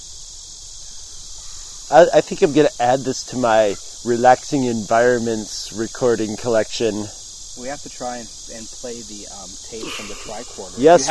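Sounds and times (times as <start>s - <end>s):
cicadas buzzing outdoors in Rochester during a cicada year: 0.0s - 11.0s
faint low rumbling: 1.9s - 11.0s
speech: 1.9s - 11.0s
laughter: 2.0s - 5.2s, 7.7s - 11.0s.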